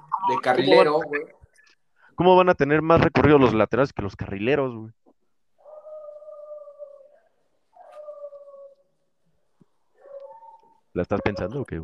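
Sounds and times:
speech: 0.3 - 1.4, 2.2 - 5.0, 11.0 - 11.8
dog howling in wavering calls: 5.6 - 8.9, 10.0 - 11.6.

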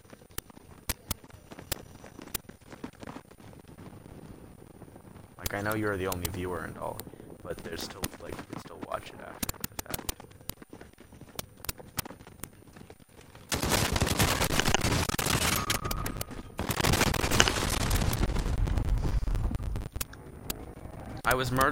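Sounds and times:
speech: 5.5 - 9.6, 21.3 - 21.7
gunfire in a video game: 13.5 - 19.9.

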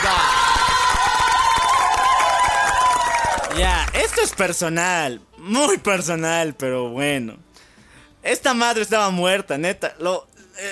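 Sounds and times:
scattered shouts: 0.0 - 4.2
loud crowd cheering: 0.0 - 4.5
speech: 3.6 - 7.5, 8.2 - 10.6.

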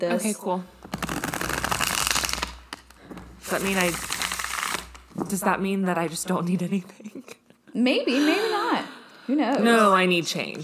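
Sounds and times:
speech: 0.0 - 0.8, 3.5 - 4.1, 5.2 - 10.6
riffling of shuffled cards: 0.8 - 5.5.

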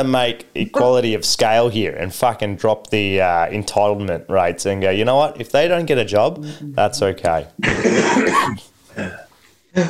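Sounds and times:
speech: 0.0 - 9.2
several people coughing: 7.6 - 9.8.

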